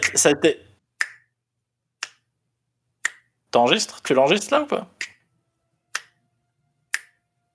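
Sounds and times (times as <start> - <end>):
speech: 0.1 - 0.7, 3.5 - 5.0
crisp finger snaps: 1.0 - 1.4, 2.0 - 2.3, 3.0 - 3.4, 5.0 - 5.2, 5.9 - 6.2, 6.9 - 7.2.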